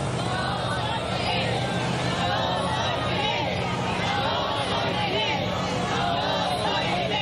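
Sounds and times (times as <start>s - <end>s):
large crowd chanting a slogan outdoors at a funeral procession: 0.0s - 7.2s.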